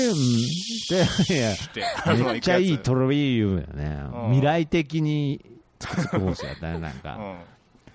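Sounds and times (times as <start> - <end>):
voice imitating a bear cicada's call: 0.0 - 1.8
speech: 0.0 - 7.6
laughter: 0.9 - 2.8, 5.8 - 7.4.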